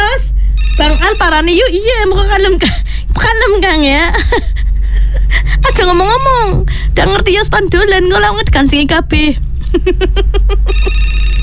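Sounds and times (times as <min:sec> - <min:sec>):
low steady hum: 0:00.0 - 0:11.4
telephone ringing for an incoming caller: 0:00.6 - 0:01.9, 0:10.7 - 0:11.4
speech: 0:00.8 - 0:04.6, 0:05.6 - 0:11.2
laughter: 0:04.0 - 0:05.9, 0:09.6 - 0:10.9.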